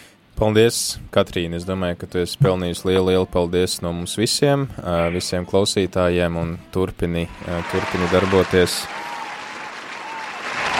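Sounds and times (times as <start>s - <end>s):
speech: 0.4s - 9.0s
crowd applause: 7.3s - 10.7s.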